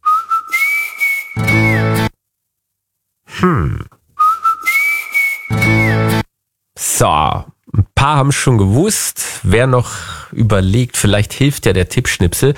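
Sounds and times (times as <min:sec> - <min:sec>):
bright whistled phrase in a song intro: 0:00.0 - 0:02.1, 0:04.2 - 0:06.2
sliding vocal sweep: 0:03.3 - 0:03.9
low buzzing vocal grunt: 0:03.3 - 0:04.0
speech: 0:03.4 - 0:04.0, 0:07.0 - 0:12.5.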